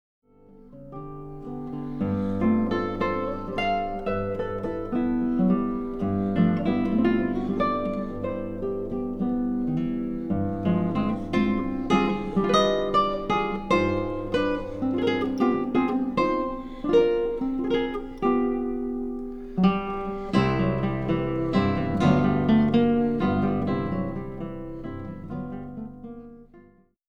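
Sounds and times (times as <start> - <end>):
acoustic instruments playing: 0.5 - 26.8.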